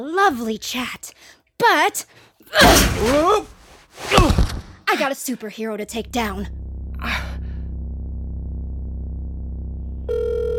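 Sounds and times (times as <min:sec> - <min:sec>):
speech: 0:00.0 - 0:07.3
electronic telephone tone from an unanswered call going to voicemail: 0:10.1 - 0:10.5.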